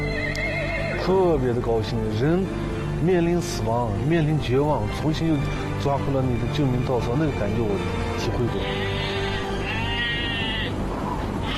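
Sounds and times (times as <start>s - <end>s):
steady noise: 0.0s - 11.5s
speech: 1.0s - 9.2s
sheep bleating in a flock on a snowy trail: 8.6s - 10.8s.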